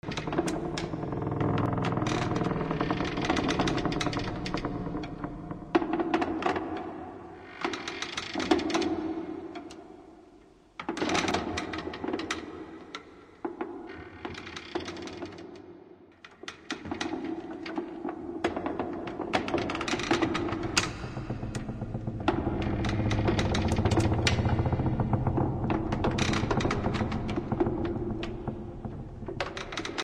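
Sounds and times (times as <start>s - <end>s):
dark wood creaking with heavy echo: 0.0s - 10.2s, 10.8s - 30.0s.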